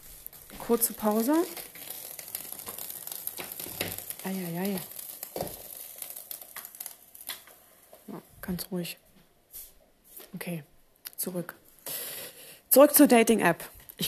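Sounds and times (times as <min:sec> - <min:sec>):
pot of corn boiling over onto a hot stove, sizzling: 0:00.0 - 0:10.4, 0:11.6 - 0:14.0
speech: 0:00.7 - 0:01.8, 0:04.2 - 0:05.0, 0:08.5 - 0:09.0, 0:10.3 - 0:11.6, 0:12.7 - 0:14.0.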